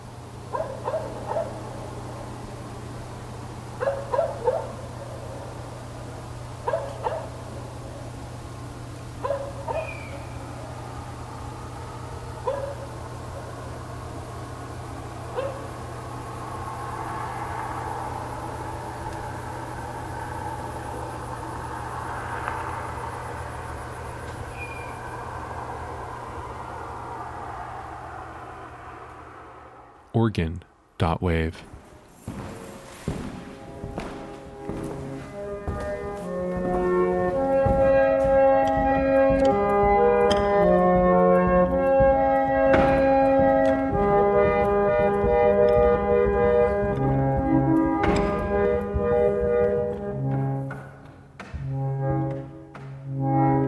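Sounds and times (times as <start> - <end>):
crickets chirping at night: 0.0 - 30.1, 32.4 - 50.2
car passing at night: 0.0 - 31.0, 31.8 - 53.6
steady low night hum: 0.0 - 53.6
distant dogs barking at night: 0.3 - 2.7, 3.5 - 8.2, 9.0 - 30.1, 34.9 - 50.2
owl screech: 24.5 - 25.4
speech: 30.2 - 31.8.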